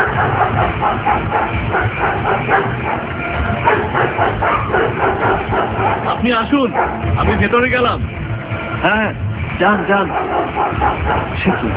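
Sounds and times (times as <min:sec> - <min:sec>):
two dogs barking fiercely while charging at a person: 0:00.0 - 0:07.6, 0:09.6 - 0:11.7
loud dense rumbling: 0:00.0 - 0:11.7
speech: 0:06.5 - 0:08.2, 0:08.8 - 0:11.7.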